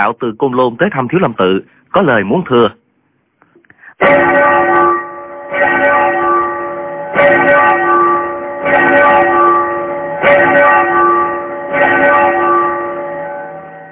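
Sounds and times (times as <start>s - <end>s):
speech: 0.0s - 2.8s, 4.0s - 4.4s
more than ten large temple bells ringing together: 4.0s - 13.8s.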